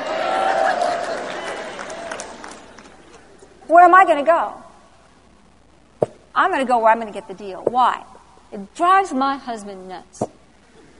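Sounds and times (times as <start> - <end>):
whoops from a crowd: 0.0 - 2.4
crowd cheering and clapping: 0.0 - 3.6
speech: 3.7 - 4.6, 6.4 - 10.4.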